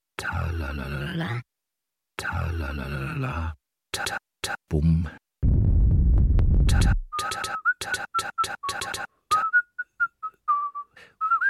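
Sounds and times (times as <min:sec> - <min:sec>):
speech: 0:00.5 - 0:01.5, 0:02.2 - 0:05.2, 0:06.7 - 0:09.4
loud low sound: 0:05.4 - 0:07.1
high thin whistling on a cold windswept snowy plateau by a ski lift: 0:07.1 - 0:11.4.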